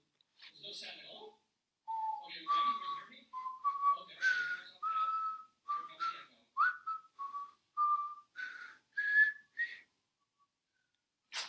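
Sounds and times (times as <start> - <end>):
person whistling a slow tune: 1.9 - 9.9.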